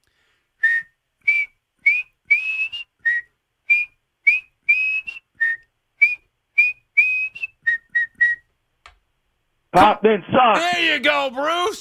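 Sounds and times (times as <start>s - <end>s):
person whistling a football fans' whistle chant: 0.6s - 8.4s
speech: 9.8s - 11.7s.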